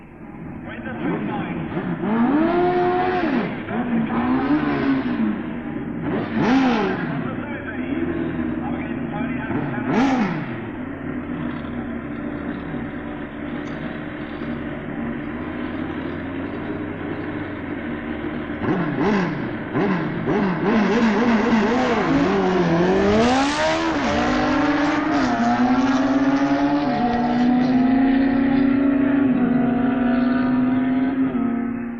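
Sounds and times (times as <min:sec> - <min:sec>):
1200 Suzuki and 1000cc Kawasaki street bike engines roaring while drag racing: 0:00.0 - 0:31.9
man commentating: 0:07.2 - 0:10.2.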